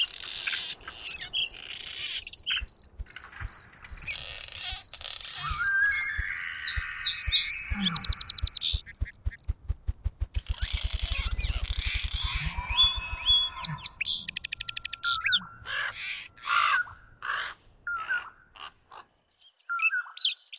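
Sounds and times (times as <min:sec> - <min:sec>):
dense chorus of birds chirping and whistling: 0:00.0 - 0:18.3
rapid rattling pulse: 0:02.6 - 0:15.0
thin high insect whine: 0:02.8 - 0:13.7.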